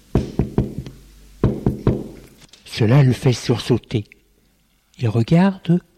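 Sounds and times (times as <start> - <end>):
knuckles knocking on a wooden office door: 0.1 - 2.2
speech: 2.8 - 4.2, 5.0 - 5.9.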